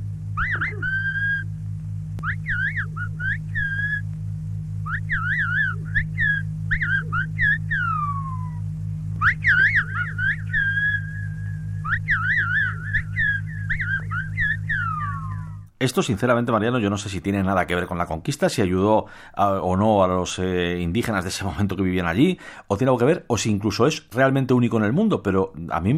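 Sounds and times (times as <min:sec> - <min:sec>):
steady low hum: 0:00.0 - 0:25.9
speech: 0:15.8 - 0:25.9.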